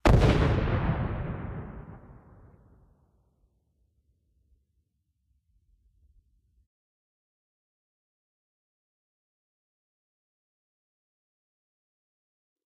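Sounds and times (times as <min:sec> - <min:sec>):
distant time bomb exploding: 0:00.0 - 0:03.0.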